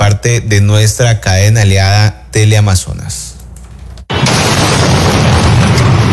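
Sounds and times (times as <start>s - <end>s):
speech: 0.1s - 3.3s
car bomb explosion: 4.1s - 6.1s.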